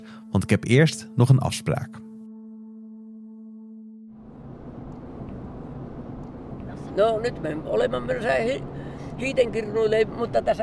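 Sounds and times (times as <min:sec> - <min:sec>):
speech: 0:00.4 - 0:02.0, 0:07.0 - 0:10.6
low car engine hum with a droning tone: 0:04.1 - 0:10.6
broadband road and wind rumble of a moving car: 0:04.2 - 0:10.6.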